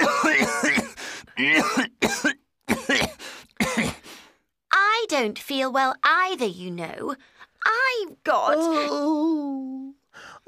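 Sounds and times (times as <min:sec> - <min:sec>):
person coughing: 0:00.0 - 0:04.1
speech: 0:05.2 - 0:10.4.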